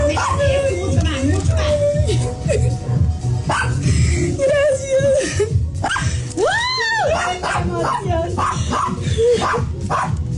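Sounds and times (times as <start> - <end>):
celebrating dog barking and yipping excitedly: 0.0 - 0.7, 3.5 - 3.8, 5.8 - 6.1, 7.1 - 10.2
people talking and murmuring: 0.0 - 2.6, 4.3 - 5.5, 6.4 - 8.5.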